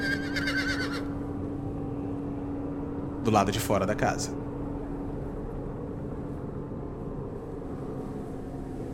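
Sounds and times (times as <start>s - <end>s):
horse whinnying: 0.0s - 1.1s
steady low hum: 0.0s - 8.9s
speech: 3.2s - 4.5s.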